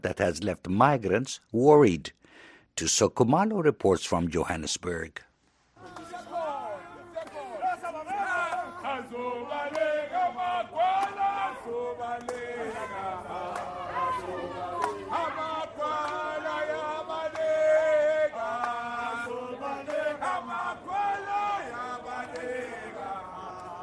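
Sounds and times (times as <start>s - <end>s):
speech: 0.0s - 5.3s
crowd of party members chanting and shouting at a clinic entrance in Johannesburg: 5.8s - 23.8s.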